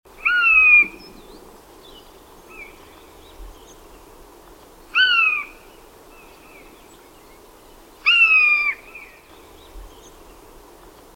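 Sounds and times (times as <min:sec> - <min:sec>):
Garrulus glandarius: 0:00.2 - 0:01.0, 0:05.0 - 0:05.6, 0:08.0 - 0:08.8.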